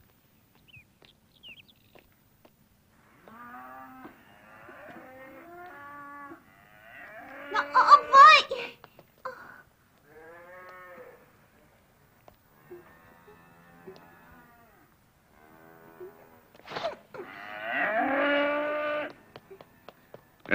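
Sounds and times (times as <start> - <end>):
cow mooing after its tail is pulled: 3.1 - 8.2, 10.1 - 11.2, 12.6 - 16.3, 17.2 - 19.1.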